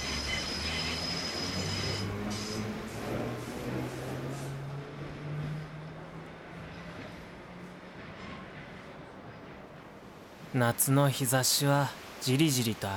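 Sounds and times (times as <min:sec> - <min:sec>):
streetcar metallic wheel squeal: 0:00.0 - 0:02.8
streetcars rumbling on rails: 0:00.0 - 0:10.8
speech: 0:10.5 - 0:12.9.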